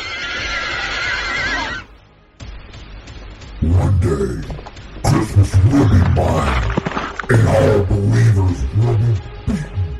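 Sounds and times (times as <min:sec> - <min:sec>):
horse whinnying: 0:00.0 - 0:01.9
speech: 0:03.6 - 0:04.6, 0:05.2 - 0:09.7.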